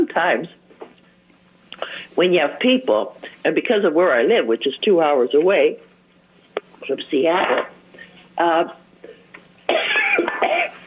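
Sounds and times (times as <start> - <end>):
faint low hum: 0.0 - 10.8
speech: 0.1 - 0.6, 1.8 - 5.9, 6.8 - 7.8, 8.4 - 8.8
person coughing: 9.7 - 10.8.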